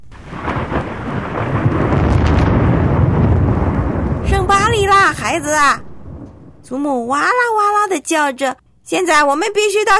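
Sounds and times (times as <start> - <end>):
hiss of rain: 0.0 - 6.3
deep rolling thunder rumble after lightning: 0.0 - 7.4
speech: 5.1 - 5.8, 6.7 - 9.9.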